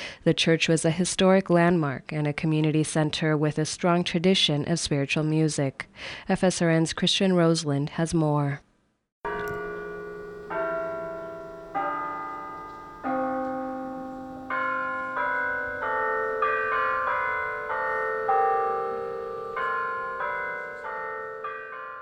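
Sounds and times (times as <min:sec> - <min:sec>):
speech: 0:00.2 - 0:08.7
church bells ringing in a churchyard: 0:09.3 - 0:21.9.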